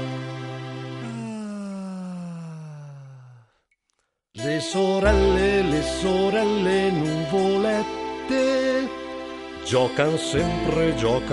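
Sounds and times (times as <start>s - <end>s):
long drawn-out voiced yawn: 1.0s - 3.6s
speech: 4.6s - 9.0s, 9.7s - 11.3s.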